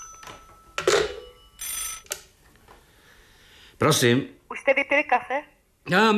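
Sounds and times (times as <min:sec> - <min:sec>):
telephone ringing with a jangling bell: 0:00.0 - 0:02.1
speech: 0:03.8 - 0:06.1.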